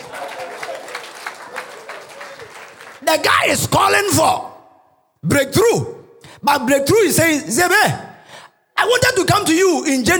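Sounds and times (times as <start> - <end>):
audience clapping and applauding: 0.0 - 3.3
speech: 3.1 - 4.5, 5.2 - 8.0, 8.9 - 10.1.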